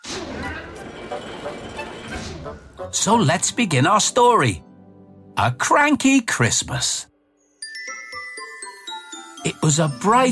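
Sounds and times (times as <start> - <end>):
dockside crane grinding and creaking: 0.0 - 2.8
tall green dockside crane moving with mechanical rumble: 0.3 - 2.8
speech: 2.9 - 4.7, 5.4 - 7.1, 9.6 - 10.3.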